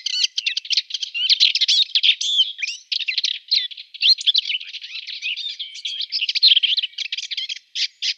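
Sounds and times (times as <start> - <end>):
Subalpine warbler giving a scratchy warbling song: 0.0 - 8.1.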